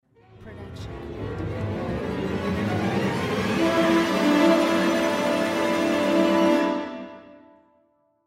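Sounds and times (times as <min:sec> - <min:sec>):
rising strings: 0:00.2 - 0:07.3
horn: 0:01.7 - 0:07.8.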